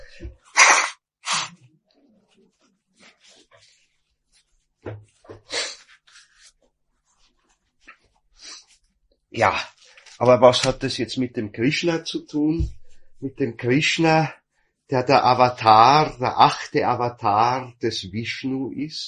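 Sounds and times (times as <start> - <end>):
person sneezing during a lecture: 0.0 - 1.7, 5.4 - 5.9
speech: 9.4 - 19.0.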